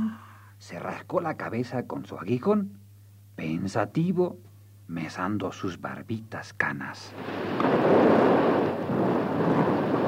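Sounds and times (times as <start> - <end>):
speech: 0.6 - 2.8, 3.4 - 8.4
heavy rain pouring down: 7.2 - 10.0.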